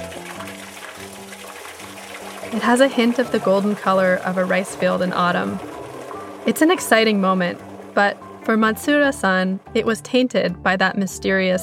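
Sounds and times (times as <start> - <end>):
clear sake pouring out of pressed milky rice mash: 0.0 - 9.0
low sustained hum: 2.0 - 9.8
speech: 2.5 - 5.7, 6.4 - 11.6.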